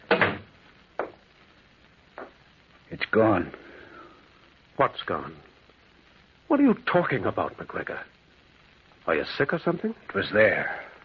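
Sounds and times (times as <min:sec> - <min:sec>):
door swinging shut with a solid thump: 0:00.1 - 0:01.2
speech: 0:02.2 - 0:03.6, 0:04.8 - 0:05.5, 0:06.5 - 0:08.2, 0:09.0 - 0:10.8.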